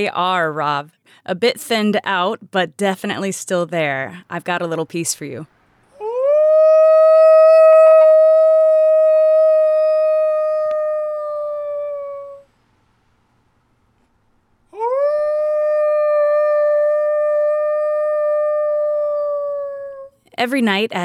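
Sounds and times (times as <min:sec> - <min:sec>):
speech: 0:00.0 - 0:05.6, 0:20.4 - 0:21.0
people howling like wolves at night in Missoula in appreciation of frontline workers: 0:06.0 - 0:12.4, 0:14.8 - 0:20.1.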